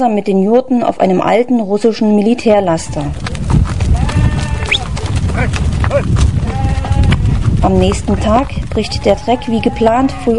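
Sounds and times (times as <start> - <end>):
speech: 0.0 - 3.5, 5.4 - 6.3, 7.6 - 10.3
dense rumble of hooves and shuffling of a herd of sheep and goats: 2.3 - 10.3
sheep and goats bleating: 2.6 - 7.4, 8.2 - 10.3.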